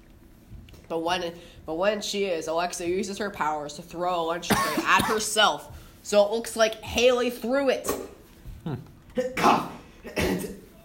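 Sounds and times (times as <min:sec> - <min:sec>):
speech: 0:00.9 - 0:10.5
harsh raspy coughs: 0:04.5 - 0:05.3, 0:08.7 - 0:10.8.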